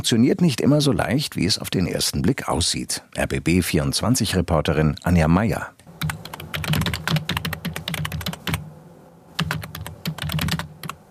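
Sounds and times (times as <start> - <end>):
speech: 0.0 - 6.9
computer keyboard typing in an office: 6.0 - 8.7, 9.4 - 11.0.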